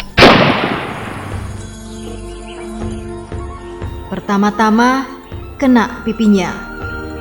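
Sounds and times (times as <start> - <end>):
gunshot: 0.0 - 1.6
speech: 4.1 - 6.7.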